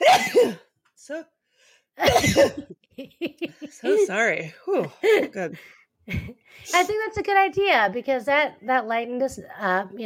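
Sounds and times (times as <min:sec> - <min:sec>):
person sneezing: 0:00.0 - 0:00.7
speech: 0:00.0 - 0:01.4, 0:02.0 - 0:10.0.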